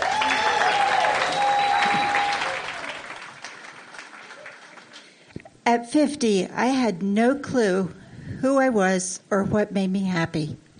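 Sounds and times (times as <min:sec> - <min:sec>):
audience applause: 0:00.0 - 0:05.3
faint whistle or tone: 0:01.2 - 0:02.4
speech: 0:05.7 - 0:10.6.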